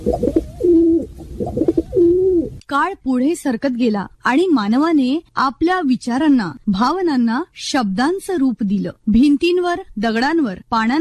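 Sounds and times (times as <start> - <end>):
speech: 0.0 - 0.4, 2.7 - 10.9
pigeon cooing: 0.0 - 2.6.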